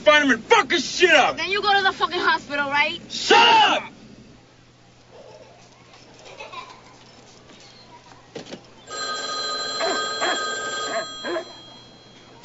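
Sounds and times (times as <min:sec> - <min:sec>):
speech: 0:00.0 - 0:03.9
low noise: 0:00.0 - 0:12.4
telephone ringing on a call placed from a payphone: 0:08.9 - 0:12.4.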